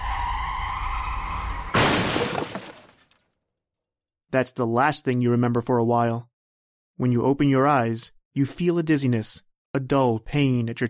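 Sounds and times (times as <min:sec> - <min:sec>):
car skidding as it turns a corner sharply: 0:00.0 - 0:01.8
car crash: 0:00.0 - 0:03.2
glass shattering in a car crash: 0:01.8 - 0:03.2
speech: 0:04.4 - 0:06.3, 0:07.0 - 0:10.8.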